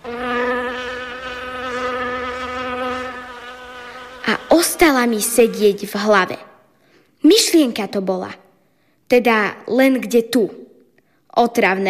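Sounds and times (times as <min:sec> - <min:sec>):
fly buzzing while hovering: 0:00.0 - 0:06.2
speech: 0:04.6 - 0:06.5, 0:07.3 - 0:08.4, 0:09.1 - 0:10.6, 0:11.4 - 0:11.8.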